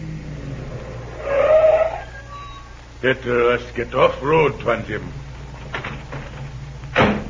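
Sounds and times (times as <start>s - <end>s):
steady low car engine rumble: 0.0s - 7.2s
car brakes squealing to a stop: 0.7s - 2.9s
speech: 3.0s - 5.2s.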